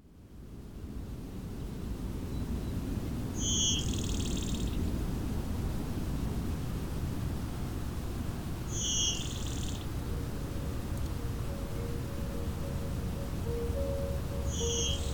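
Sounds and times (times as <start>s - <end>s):
steady hiss of outdoor noise: 0.0s - 15.1s
blue-winged warbler bee-buzz song: 8.7s - 9.8s, 14.5s - 15.1s.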